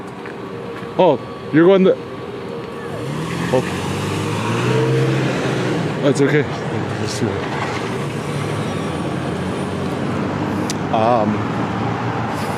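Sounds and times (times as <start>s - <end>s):
speech: 1.0s - 2.1s, 3.5s - 3.8s, 6.0s - 7.6s, 10.9s - 11.8s
voice-like wavering tone: 1.0s - 5.2s
car engine and tyres driving past on a road: 2.7s - 12.5s.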